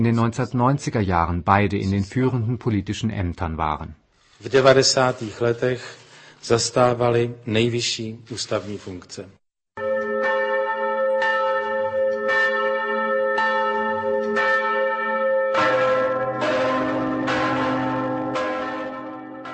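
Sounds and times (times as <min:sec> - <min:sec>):
speech: 0:00.0 - 0:09.4
church bells ringing in commemoration across the Czech Republic: 0:09.8 - 0:19.5.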